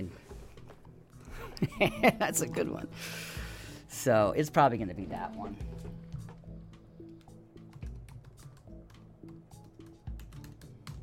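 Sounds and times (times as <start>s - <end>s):
steady low background: 0.0s - 11.0s
speech: 1.6s - 6.1s
typing an email on a computer keyboard: 7.2s - 11.0s.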